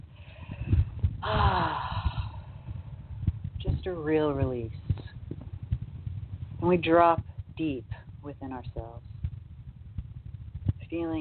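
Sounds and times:
slow deep exhale during a guided relaxation exercise: 0.2 - 2.8
speech: 3.8 - 4.8, 6.6 - 9.1, 10.9 - 11.1.

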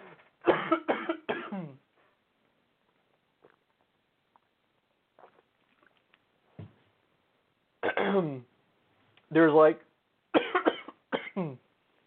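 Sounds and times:
coughing: 0.4 - 1.9, 7.8 - 8.5, 10.3 - 11.7
throat clearing: 0.5 - 1.9, 7.9 - 8.4, 10.4 - 11.6.

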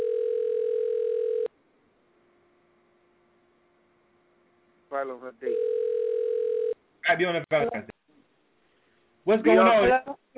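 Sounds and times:
telephone dial tone while a call is placed: 0.0 - 1.5, 5.5 - 6.8
speech: 4.9 - 5.8, 7.0 - 7.9, 9.3 - 10.2.

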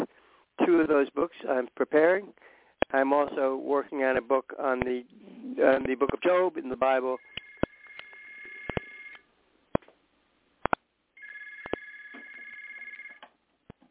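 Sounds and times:
speech: 0.7 - 7.4
telephone ringing with warbling trill: 7.2 - 9.2, 11.2 - 13.3.

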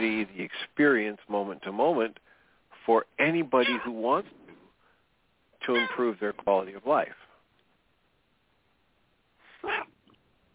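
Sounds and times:
speech: 0.2 - 2.3, 2.9 - 4.4, 5.6 - 7.2
male cat meowing loudly: 3.6 - 3.9, 5.7 - 6.0, 9.6 - 10.0.

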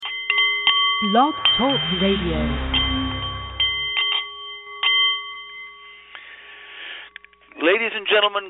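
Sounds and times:
meditation bowl struck and ringing: 0.0 - 6.4
speech: 1.0 - 2.8, 7.7 - 8.4.

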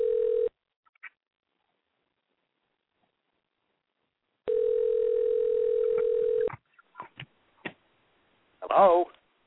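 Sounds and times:
telephone line dial tone: 0.0 - 0.5, 4.5 - 6.5
person speaking: 8.6 - 9.2.

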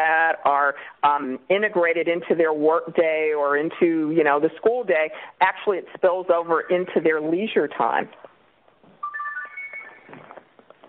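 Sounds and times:
speech: 0.4 - 8.3
phone ringtone with bright electronic tones: 9.0 - 10.4.

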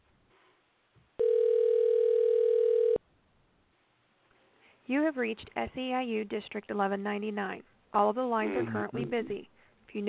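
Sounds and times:
telephone dial tone while placing a call: 1.2 - 3.0
speech: 4.9 - 10.0.

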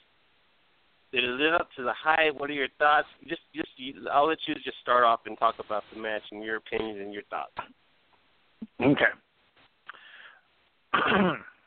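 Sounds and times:
speech: 1.1 - 7.8, 8.7 - 9.2, 10.9 - 11.5
throat clearing: 10.9 - 11.6.

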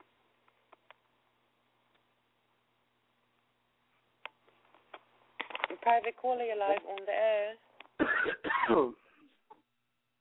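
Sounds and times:
speech: 5.8 - 9.0
caller coughing on a phone line: 8.0 - 9.0.

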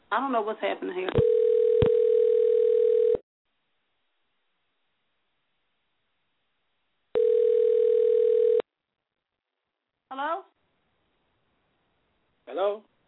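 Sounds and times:
speech: 0.1 - 1.4
telephone ringing through the line: 1.2 - 3.2, 7.2 - 8.6.

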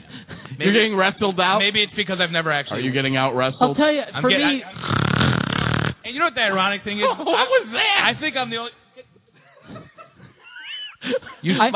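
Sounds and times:
speech: 0.6 - 5.1, 6.2 - 8.8, 11.1 - 11.7
person imitating a pig snoring with snorts and grunts: 4.7 - 6.0
laughter: 6.9 - 8.4, 9.3 - 11.7.

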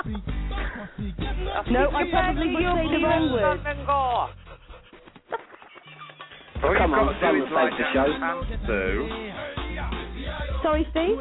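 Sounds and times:
speech: 0.0 - 4.4, 6.6 - 11.1
person imitating a dog panting: 4.1 - 5.2.

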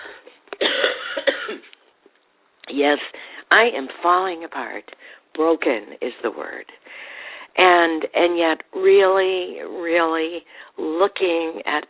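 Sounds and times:
rough throaty cough: 0.6 - 1.7
speech: 2.8 - 6.8, 7.6 - 11.8.

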